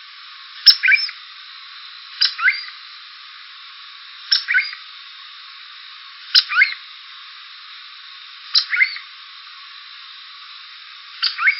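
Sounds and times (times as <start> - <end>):
faint steady hiss: 0.0 - 11.5
cuckoo calls: 0.7 - 1.2, 2.2 - 2.8, 4.3 - 4.8, 6.4 - 6.8, 8.6 - 9.1, 11.2 - 11.5.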